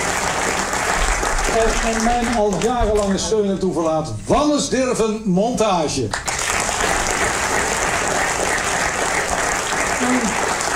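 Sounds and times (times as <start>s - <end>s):
theater audience applause for the theater staff: 0.0s - 3.5s, 6.1s - 10.7s
speech: 1.5s - 6.3s.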